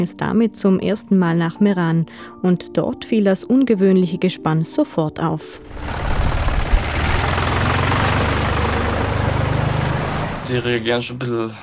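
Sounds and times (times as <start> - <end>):
speech: 0.0 - 6.2, 10.5 - 11.6
tractor diesel engine idling: 5.6 - 11.0.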